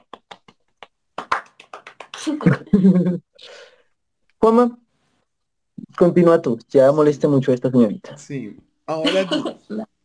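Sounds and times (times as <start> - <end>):
few people clapping hands: 0.0 - 2.6
speech: 2.2 - 3.6, 4.4 - 4.8, 6.0 - 9.9
laughter: 2.3 - 3.2, 8.9 - 9.7.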